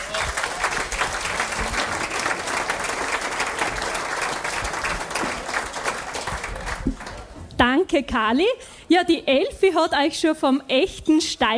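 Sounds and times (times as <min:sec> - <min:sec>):
audience applause welcoming a performer onto the stage at a regional dialect event: 0:00.0 - 0:07.4
speech: 0:07.9 - 0:11.5.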